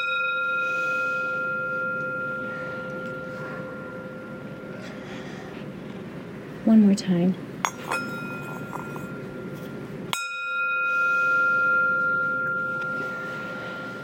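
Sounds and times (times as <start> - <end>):
bell struck and ringing: 0.0 - 5.1, 7.6 - 14.0
speech: 6.7 - 7.5.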